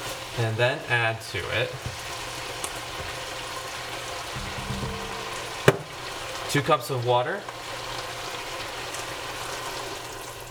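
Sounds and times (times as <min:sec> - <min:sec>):
meat sizzling as it browns in a pot for a Persian stew: 0:00.0 - 0:10.4
speech: 0:00.4 - 0:02.1, 0:06.5 - 0:07.6
sharp clatter: 0:04.4 - 0:06.2.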